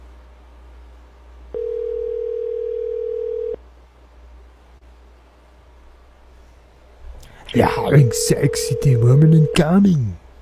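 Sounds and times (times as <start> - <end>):
steady electronic telephone tone during a call that rings through: 1.6 - 3.6, 8.0 - 9.8
speech: 7.6 - 10.2.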